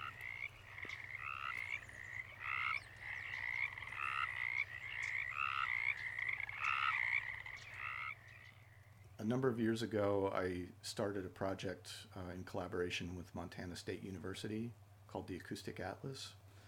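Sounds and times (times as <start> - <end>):
chorus of frogs croaking: 0.0 - 9.2
low constant hum: 0.0 - 16.6
speech: 9.2 - 16.4.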